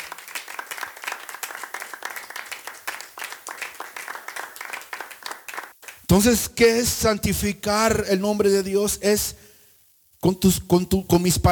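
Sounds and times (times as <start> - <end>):
audience crowd clapping hands: 0.0 - 6.1
speech: 6.1 - 9.4, 10.2 - 11.5.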